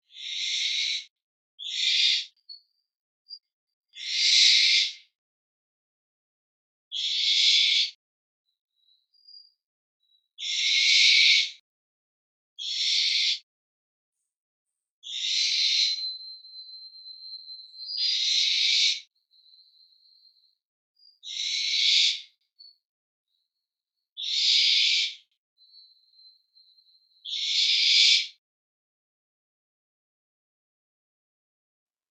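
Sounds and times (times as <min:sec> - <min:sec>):
barn owl calling in Mayotte: 0:00.1 - 0:02.4, 0:04.0 - 0:05.0, 0:06.9 - 0:08.0, 0:10.4 - 0:11.6, 0:12.6 - 0:13.5, 0:15.0 - 0:22.7, 0:24.2 - 0:28.4.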